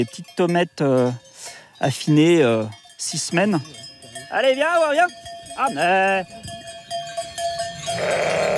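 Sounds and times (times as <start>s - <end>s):
speech: 0.0s - 1.2s, 1.8s - 6.5s
faint farmyard background: 0.0s - 8.5s
ewe bleating: 7.9s - 8.5s.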